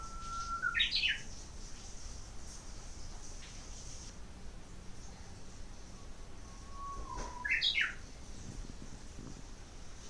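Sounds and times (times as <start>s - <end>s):
Japanese bush warbler whistled song: 0.0s - 1.4s, 5.7s - 8.1s
low steady hum: 0.0s - 10.0s.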